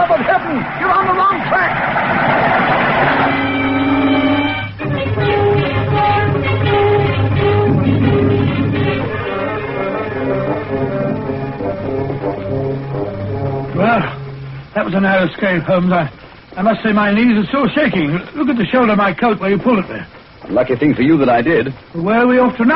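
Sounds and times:
train clattering past in fog: 0.9 - 14.9
droning horn-like tone: 3.0 - 14.9
speech: 14.9 - 22.7.

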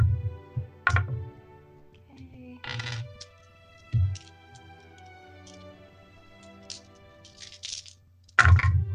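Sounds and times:
many dice rolling and tumbling across a hard surface: 2.6 - 5.7, 6.4 - 8.8.

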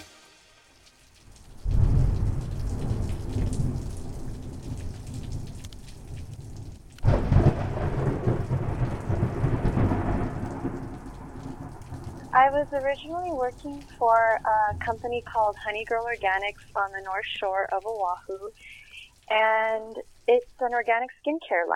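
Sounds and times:
heavy rain in a thunderstorm: 0.0 - 21.7
deep rolling thunder: 1.5 - 12.9
loud crack of thunder: 1.6 - 5.6, 6.2 - 13.4
speech: 12.4 - 21.7.

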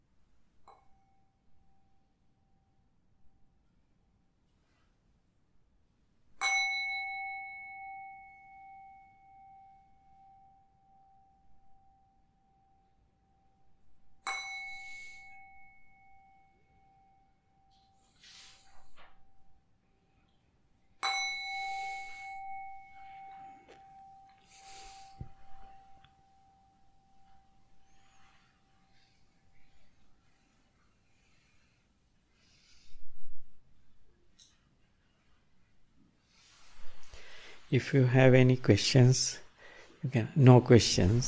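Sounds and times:
meditation bell struck to end a meditation session: 6.4 - 18.3, 21.0 - 29.6
speech: 37.7 - 39.4, 40.0 - 41.2.

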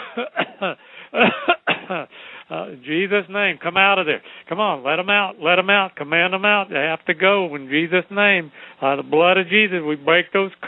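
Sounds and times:
chuckle-like breaths: 0.0 - 1.2, 2.0 - 2.5
several people coughing together during a prayer to cast out spirits: 0.0 - 2.1
throat clearing: 0.0 - 2.1
speech: 0.2 - 10.6.

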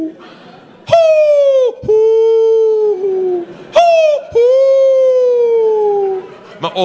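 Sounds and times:
man imitating owl hoots to call a wild owl by a lake: 0.8 - 6.3.

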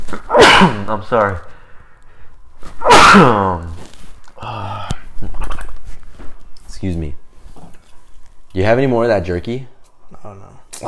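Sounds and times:
speech: 0.1 - 1.5, 2.8 - 3.7, 6.8 - 7.2, 8.5 - 10.8
loud sneeze: 0.2 - 1.0, 2.8 - 3.7.

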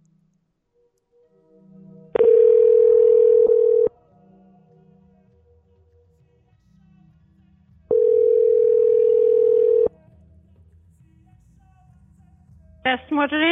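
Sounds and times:
telephone dial tone after a call disconnects: 2.2 - 3.9, 7.9 - 9.9
speech: 12.9 - 13.4.

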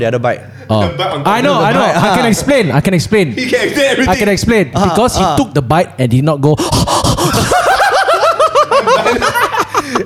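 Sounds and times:
speech: 0.0 - 7.7
heavy gasping breaths: 6.6 - 7.6
laughter: 6.7 - 10.0.

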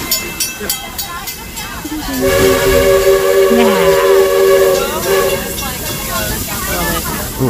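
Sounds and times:
busy murmur: 0.0 - 7.4
hissing rush of steam: 2.0 - 7.4
steam train whistle from a phone app: 2.1 - 5.9.

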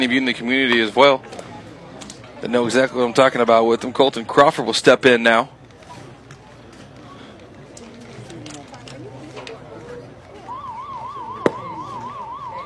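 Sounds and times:
speech: 0.0 - 1.4, 2.4 - 5.6
warbling siren: 10.3 - 12.6.

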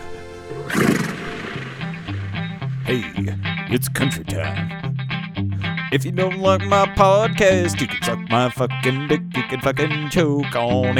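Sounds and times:
horse neighing: 0.0 - 3.5
speech: 2.9 - 5.0, 5.9 - 10.9.

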